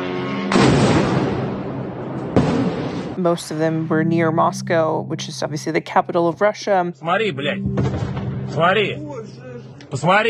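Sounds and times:
loud explosions from drone attack: 0.5s - 3.2s, 7.7s - 8.7s
speech: 3.2s - 10.2s.

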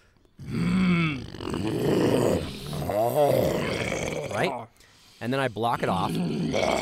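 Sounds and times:
person imitating a low animal growl: 0.4s - 4.8s, 5.7s - 6.7s
speech: 4.4s - 4.6s, 5.2s - 6.7s.

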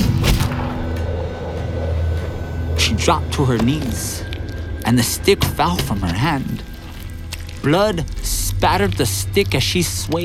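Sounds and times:
pistol shot fired by a mounted soldier: 0.0s - 0.9s
low steady rumble: 0.0s - 10.2s
speech: 3.0s - 6.7s, 7.6s - 10.2s.

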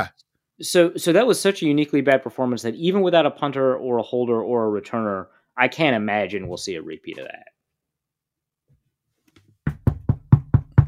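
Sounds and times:
speech: 0.0s - 7.5s
knocks on a hard desk surface: 9.7s - 10.8s.

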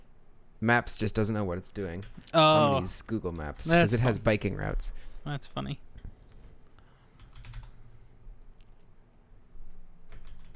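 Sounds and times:
low steady hum: 0.0s - 10.5s
speech: 0.6s - 5.9s
keyboard typing while entering a search in a maps app: 7.2s - 7.8s, 10.1s - 10.5s.

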